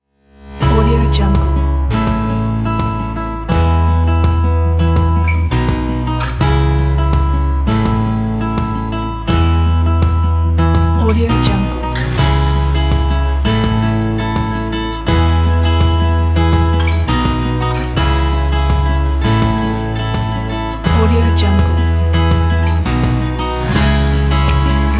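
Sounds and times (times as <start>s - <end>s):
romantic acoustic music: 0.3s - 24.9s.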